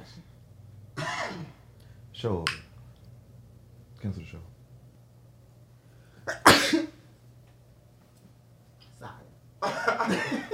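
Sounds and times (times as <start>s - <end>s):
quiet low hum: 0.0s - 10.5s
sneeze: 1.0s - 1.6s, 6.3s - 7.0s
speech: 2.2s - 2.6s, 4.0s - 4.6s
laughter: 9.6s - 10.5s.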